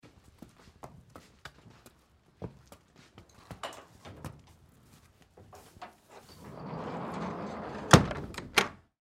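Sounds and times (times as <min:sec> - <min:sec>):
horse walking into stable: 0:00.0 - 0:06.4
sliding gate latch: 0:05.8 - 0:08.8
stable door: 0:06.2 - 0:08.8.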